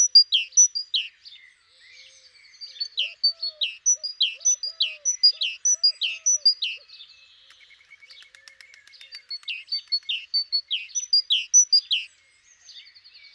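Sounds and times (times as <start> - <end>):
Parus major great tit calling: 0.0 - 1.2, 2.7 - 6.9, 9.1 - 12.1.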